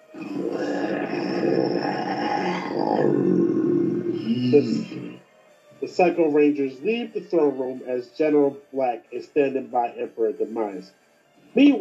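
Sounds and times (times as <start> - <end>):
loud angry roar: 0.1 - 5.2
speech: 0.4 - 5.2, 5.8 - 11.0, 11.6 - 11.7.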